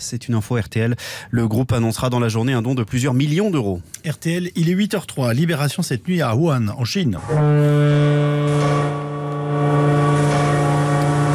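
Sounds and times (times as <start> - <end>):
speech: 0.0 - 9.0
deep ship horns blaring: 7.2 - 11.3.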